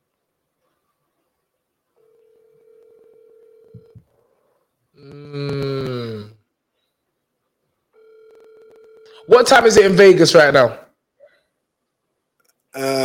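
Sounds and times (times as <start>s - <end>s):
phone dial tone: 2.0s - 4.3s, 8.0s - 9.3s
phone ringing: 2.0s - 4.3s, 7.9s - 9.9s
speech: 5.0s - 5.5s, 9.3s - 10.8s.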